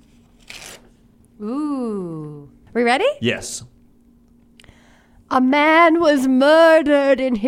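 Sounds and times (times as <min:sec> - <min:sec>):
paper ripping: 0:00.0 - 0:01.0
speech: 0:01.4 - 0:03.8, 0:05.3 - 0:07.4.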